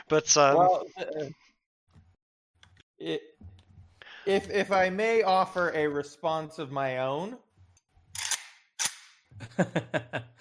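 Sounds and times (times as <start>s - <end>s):
speech: 0.1s - 1.5s, 3.0s - 3.3s, 4.2s - 7.4s, 9.4s - 10.3s
guns being racked and handled: 8.2s - 9.0s
laughter: 9.4s - 10.3s.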